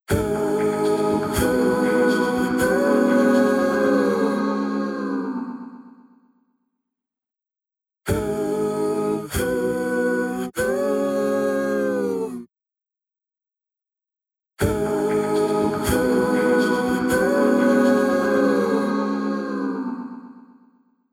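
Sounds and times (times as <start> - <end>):
vocals with ambience effect from H3000 BD Mk II: 0.0 - 6.1, 8.1 - 12.5, 14.6 - 20.6.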